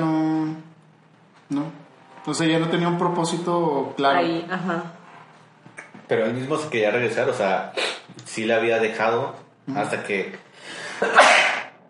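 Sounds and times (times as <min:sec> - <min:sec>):
speech: 0:01.5 - 0:05.0, 0:06.1 - 0:11.4
sneeze: 0:07.8 - 0:08.1, 0:11.0 - 0:11.8.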